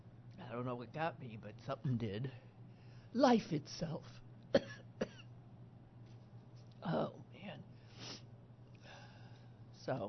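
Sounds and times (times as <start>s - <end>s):
faint humming background: 0.0s - 10.0s
speech: 0.5s - 2.5s, 3.1s - 4.8s, 6.8s - 7.2s, 9.9s - 10.0s
ill person coughing: 4.5s - 5.3s.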